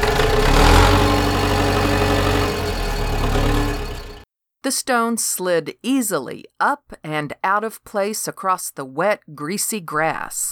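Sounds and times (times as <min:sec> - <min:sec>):
heavy tractor engine revving: 0:00.0 - 0:04.2
speech: 0:04.7 - 0:10.5.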